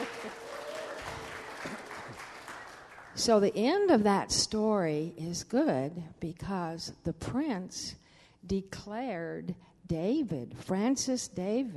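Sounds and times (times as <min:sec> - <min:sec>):
scattered cheers: 0:00.0 - 0:02.2
crowd applause: 0:00.0 - 0:03.2
speech: 0:03.2 - 0:11.7.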